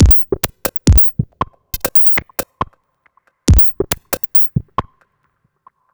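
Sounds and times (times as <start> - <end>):
electronic percussion: 0.0 - 2.6, 3.5 - 4.9.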